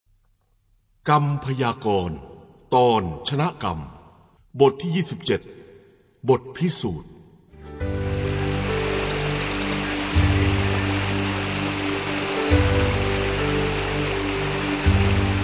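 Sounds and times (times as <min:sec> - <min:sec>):
speech: 0:01.0 - 0:04.0, 0:04.6 - 0:05.6, 0:06.2 - 0:07.1
low sustained musical tones: 0:07.7 - 0:15.4
rushing water like a waterfall: 0:07.8 - 0:15.4.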